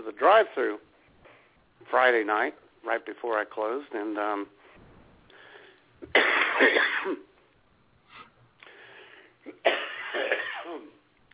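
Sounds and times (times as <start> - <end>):
speech: 0.2 - 0.9, 1.8 - 4.6, 6.0 - 7.3
person coughing after swallowing a mosquito near a lake: 6.0 - 7.3, 9.4 - 11.0.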